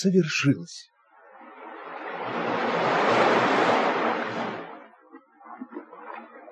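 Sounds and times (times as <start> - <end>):
speech: 0.0 - 0.9
splashes of receding water: 1.0 - 6.4
sea wave crashing on the shore: 1.2 - 4.9.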